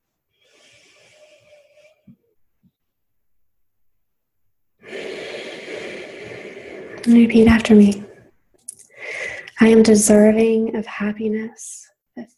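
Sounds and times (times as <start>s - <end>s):
deep breaths during a guided meditation: 0.3s - 2.4s, 4.8s - 9.6s
speech: 7.1s - 8.0s, 9.6s - 12.3s.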